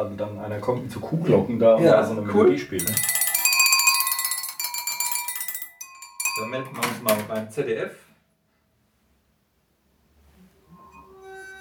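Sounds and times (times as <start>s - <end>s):
speech: 0.0s - 3.2s, 6.4s - 8.0s
glasses filled with different amounts of water struck and ringing: 2.8s - 7.3s, 10.8s - 11.5s.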